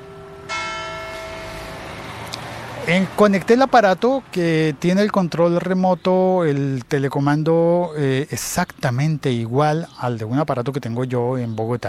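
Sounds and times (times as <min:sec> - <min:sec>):
church bell ringing in the evening: 0:00.0 - 0:02.3
steady ambience: 0:00.0 - 0:10.7
speech: 0:02.9 - 0:11.8.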